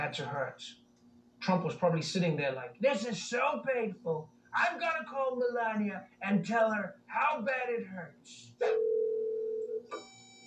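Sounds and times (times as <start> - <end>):
speech: 0.0 - 0.8, 1.4 - 9.0
telephone line tone of an unanswered outgoing call: 8.6 - 10.4.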